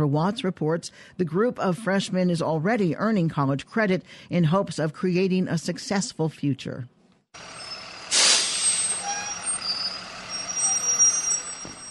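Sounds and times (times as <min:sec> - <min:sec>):
speech: 0:00.0 - 0:07.6
school bus engine idling: 0:07.4 - 0:11.8
school bus air brakes hissing: 0:07.5 - 0:11.8.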